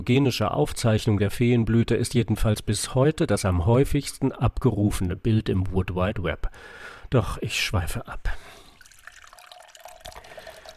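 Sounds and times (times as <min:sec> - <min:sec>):
speech: 0:00.0 - 0:08.5
water trickling and dripping during watering: 0:08.6 - 0:10.7.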